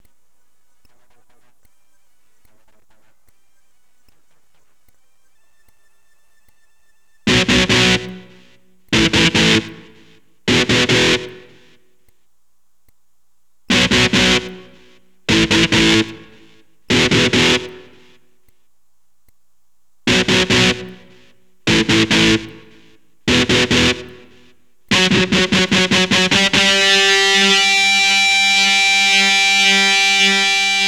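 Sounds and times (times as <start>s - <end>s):
electric guitar power chord in E: 7.3s - 11.7s, 13.7s - 18.1s, 20.1s - 30.8s.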